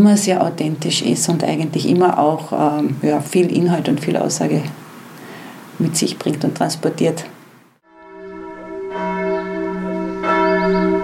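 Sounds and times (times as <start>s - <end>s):
speech: 0.0s - 4.9s, 5.8s - 7.4s
church bells ringing in Seekirchen: 7.9s - 11.0s.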